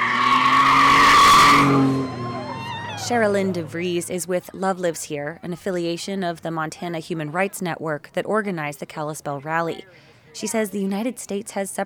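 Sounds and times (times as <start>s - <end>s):
pickup truck tires squealing during a burnout: 0.0s - 3.8s
pickup truck engine roar during a burnout: 0.0s - 4.2s
speech: 3.1s - 11.8s.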